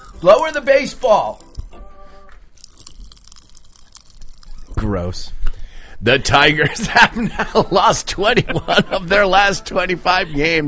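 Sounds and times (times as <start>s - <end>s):
sugary crisp snack being chewed near the microphone: 0.0s - 1.8s, 2.6s - 4.8s
speech: 0.2s - 1.5s, 4.8s - 5.4s, 6.0s - 10.6s
sugary crisp snack poured from a bag: 1.2s - 1.7s, 2.6s - 4.8s
laughter: 6.5s - 9.4s.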